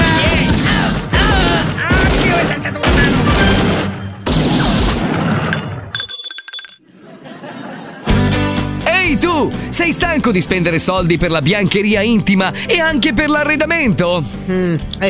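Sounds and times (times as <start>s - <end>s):
gunshots as a comedic sound effect: 0.0s - 5.6s
bright ringing tone: 5.6s - 6.8s
laughter: 6.9s - 8.3s
speech: 9.4s - 15.0s.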